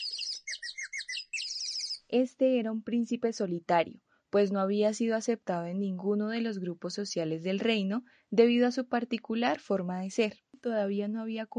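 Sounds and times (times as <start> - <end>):
birds singing: 0.0 - 2.1
speech: 2.1 - 11.5.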